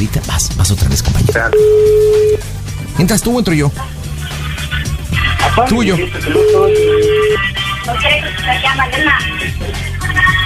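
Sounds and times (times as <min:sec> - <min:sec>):
speech: 0:00.0 - 0:04.0, 0:05.6 - 0:10.3
busy layered wash of music-like sound: 0:00.0 - 0:10.4
telephone ringing with a steady electronic tone: 0:01.3 - 0:02.4, 0:06.3 - 0:07.4.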